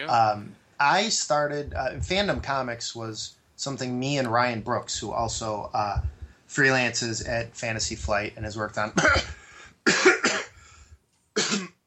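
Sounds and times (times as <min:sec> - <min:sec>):
speech: 0:00.0 - 0:10.0
person coughing: 0:09.0 - 0:10.7, 0:11.4 - 0:11.8.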